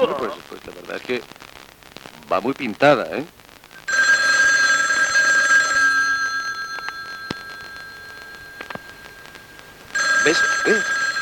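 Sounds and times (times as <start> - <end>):
speech: 0.0 - 1.4, 2.3 - 3.4, 10.3 - 10.9
telephone bell ringing: 3.9 - 11.2.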